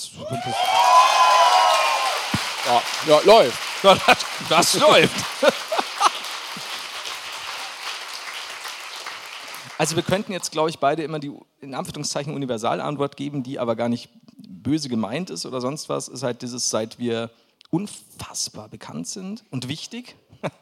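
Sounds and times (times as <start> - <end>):
speech: 0.1 - 0.8, 2.7 - 5.6, 9.8 - 20.6
live audience clapping and whooping: 0.2 - 10.5
laughter: 2.7 - 7.8.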